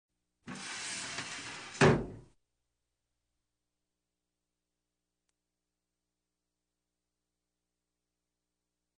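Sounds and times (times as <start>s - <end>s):
medical office door on runners: 0.5s - 2.3s.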